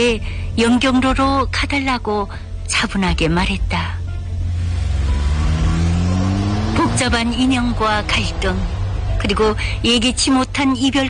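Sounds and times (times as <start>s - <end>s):
speech: 0.0s - 4.0s, 7.0s - 11.0s
taxi engine revving as the car drives off: 3.4s - 11.0s.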